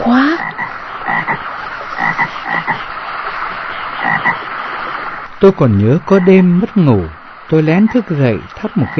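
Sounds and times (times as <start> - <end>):
toads croaking at midnight in a damp leaky house on a rainy night: 0.0 - 2.9, 3.7 - 4.5, 8.6 - 8.9
speech: 5.4 - 8.9.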